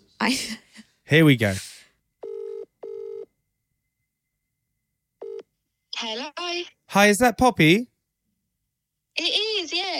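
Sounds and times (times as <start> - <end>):
speech: 0.2 - 1.7, 6.6 - 7.9, 9.2 - 9.8
electronic telephone dialing beeps: 2.2 - 3.2, 5.2 - 5.4.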